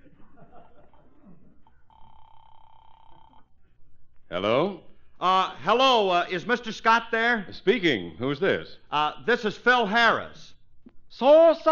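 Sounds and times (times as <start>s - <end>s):
laughter: 0.0s - 1.6s
telephone ringing: 1.9s - 3.5s
speech: 4.3s - 11.6s.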